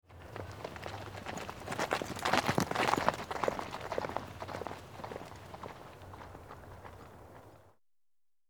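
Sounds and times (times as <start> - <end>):
small group of horses walking on gravel: 0.1 - 7.7.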